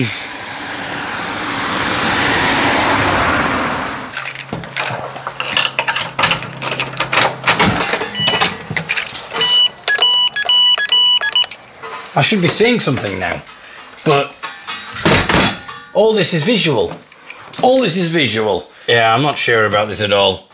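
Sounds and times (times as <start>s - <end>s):
speech: 0.0s - 0.3s, 12.2s - 14.4s, 16.0s - 20.5s
car passing by on a road: 0.0s - 4.5s
mechanical clicks, clatters and tinkling knocks: 4.1s - 11.6s.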